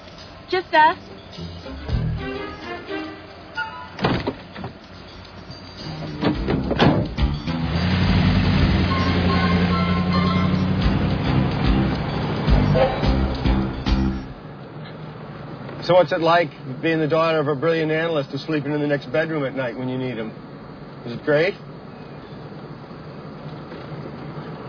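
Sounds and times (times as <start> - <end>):
car engine rumbling while driving with passengers inside: 0.0 - 24.6
speech: 0.5 - 1.5, 15.9 - 21.7
knocks and thumps: 6.1 - 7.4.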